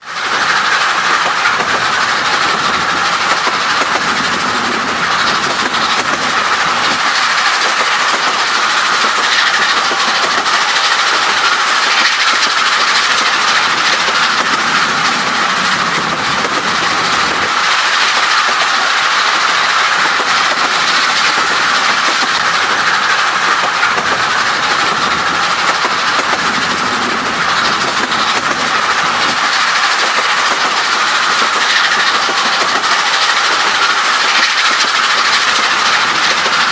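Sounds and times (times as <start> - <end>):
fast narrow-gauge locomotive exhaust: 0.0 - 36.6.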